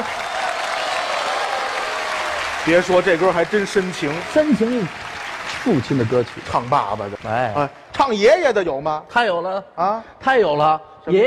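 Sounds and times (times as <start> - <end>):
audience applause: 0.0 - 7.8
speech: 2.6 - 5.0, 5.6 - 11.2.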